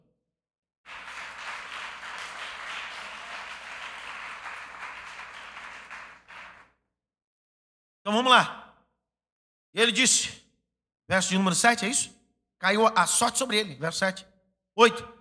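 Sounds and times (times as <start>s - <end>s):
crowd applauding: 0.9s - 6.7s
speech: 8.1s - 8.6s, 9.8s - 10.4s, 11.1s - 15.1s.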